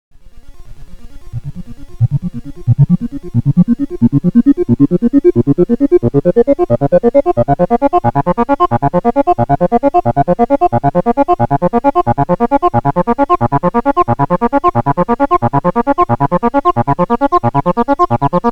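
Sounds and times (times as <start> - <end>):
ARP Avatar synthesizer VCF modulated via external VCO and LFO: 0.5 - 18.5.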